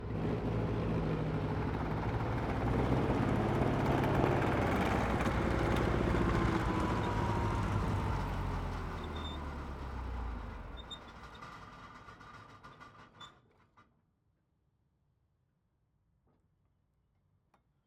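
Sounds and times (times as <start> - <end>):
SOMUA S35 tank reversing away uphill: 0.2 - 11.2.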